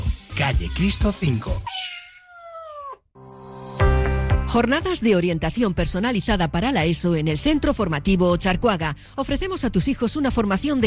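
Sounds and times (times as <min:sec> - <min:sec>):
speech: 0:00.4 - 0:01.8, 0:04.5 - 0:10.8
cat meowing: 0:01.6 - 0:03.0.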